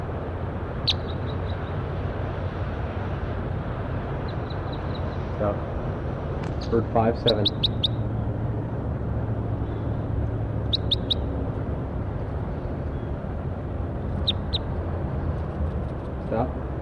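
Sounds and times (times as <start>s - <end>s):
steady loud broadband noise: 0.0s - 16.8s
brief high bird chirps: 0.8s - 1.8s, 4.2s - 5.2s, 7.2s - 8.0s, 10.7s - 11.3s, 14.2s - 14.7s
speech: 0.9s - 1.1s, 5.4s - 5.7s, 6.7s - 7.8s.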